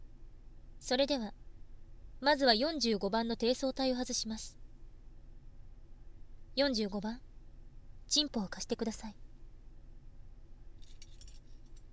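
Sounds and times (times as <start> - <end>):
low steady hum: 0.0 - 11.9
speech: 0.9 - 1.4, 2.2 - 4.6, 6.6 - 7.3, 8.1 - 9.2
keys jangling as a key is removed: 10.8 - 11.9
light bright metallic clinks: 10.8 - 11.9.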